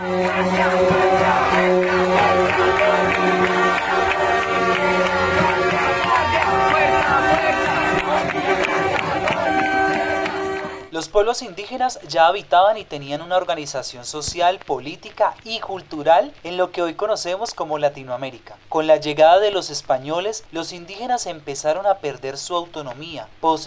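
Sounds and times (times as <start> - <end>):
large crowd roaring and chanting: 0.0 - 11.6
speech: 0.4 - 1.0, 11.0 - 23.6.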